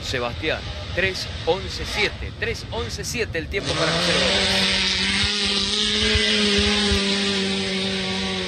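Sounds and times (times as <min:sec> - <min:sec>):
racing car engine droning: 0:00.0 - 0:08.4
speech: 0:00.1 - 0:05.0.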